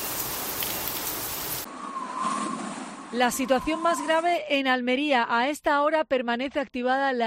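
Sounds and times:
steady rain hissing: 0.0 - 1.7
speech: 3.1 - 7.2.

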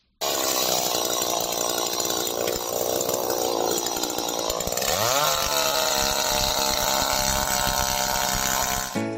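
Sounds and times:
chainsaw cutting wood during pruning: 0.2 - 9.1.

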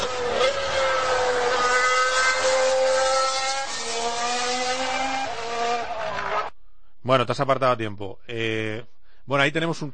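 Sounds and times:
Mercedes Formula 1 race car engine passing by: 0.0 - 6.5
speech: 7.1 - 9.9.

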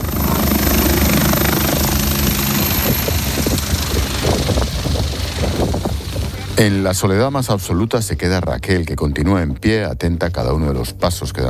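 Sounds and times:
helicopter rotor thudding as it takes off: 0.0 - 7.3
speech: 6.6 - 11.4.

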